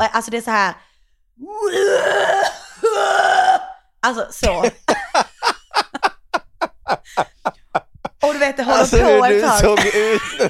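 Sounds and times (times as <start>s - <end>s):
speech: 0.0s - 5.3s, 7.2s - 7.6s, 8.6s - 10.4s
voice imitating a man's harsh rasping coughing fit in the toilet: 1.7s - 3.8s
laughter: 4.6s - 10.4s.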